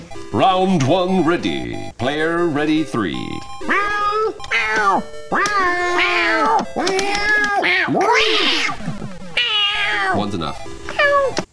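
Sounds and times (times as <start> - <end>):
speech: 0.3 - 3.8, 4.7 - 8.8
kitten meowing after being hit on the head by a falling bell: 3.6 - 8.7, 9.4 - 10.2.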